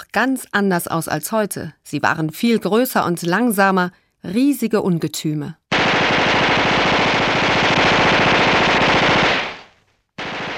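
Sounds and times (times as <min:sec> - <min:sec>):
speech: 0:00.1 - 0:05.6
World War I machine gun firing: 0:05.7 - 0:10.5.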